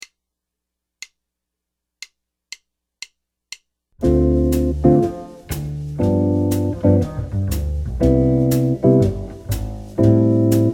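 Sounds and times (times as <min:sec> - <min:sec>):
jazz chord progression: 0:04.0 - 0:10.7.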